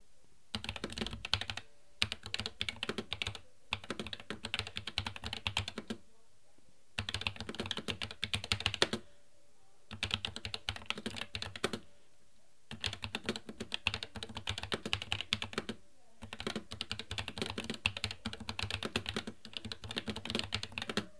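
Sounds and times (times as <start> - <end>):
gaming keyboard typing: 0.5 - 6.0, 7.0 - 9.1, 9.9 - 11.9, 12.7 - 21.1.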